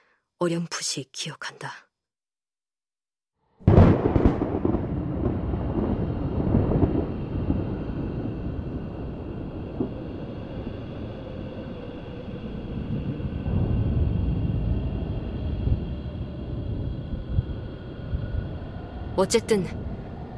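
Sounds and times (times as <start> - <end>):
speech: 0.4 - 1.9, 19.2 - 19.9
sharp crack of thunder: 3.6 - 11.8, 12.4 - 20.3
roaring wind of a storm around a stranded boat: 3.6 - 20.3.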